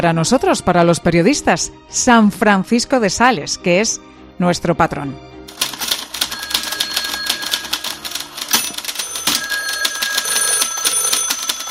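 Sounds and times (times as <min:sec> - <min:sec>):
speech: 0:00.0 - 0:05.3
several typewriters clattering in a busy newsroom: 0:05.5 - 0:11.7.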